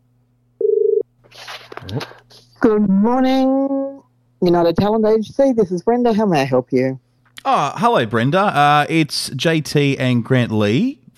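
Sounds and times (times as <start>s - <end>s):
telephone ringback tone on an outgoing call: 0.6s - 1.0s
speech: 1.9s - 3.7s, 4.4s - 11.1s.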